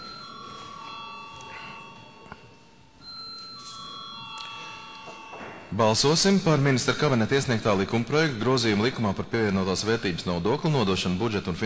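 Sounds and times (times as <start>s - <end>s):
parliament chamber bell ringing to call a vote: 0.0s - 7.6s
faint room murmur: 0.0s - 11.6s
speech: 5.7s - 11.6s.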